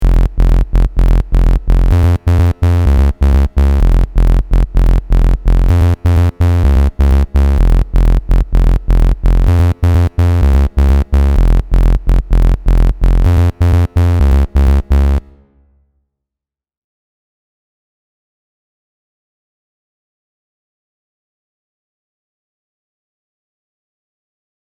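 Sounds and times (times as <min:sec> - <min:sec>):
aliasing-free bass oscillator tone: 0:00.0 - 0:15.6.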